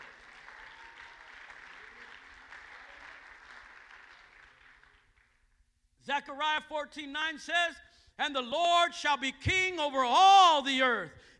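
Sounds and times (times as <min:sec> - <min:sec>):
audience clapping hands: 0:00.0 - 0:05.5
speech: 0:06.1 - 0:11.3.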